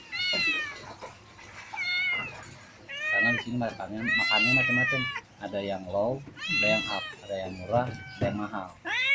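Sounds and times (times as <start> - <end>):
cat meowing: 0.0 - 0.9, 1.7 - 5.4, 6.3 - 9.1
speech: 3.4 - 8.9.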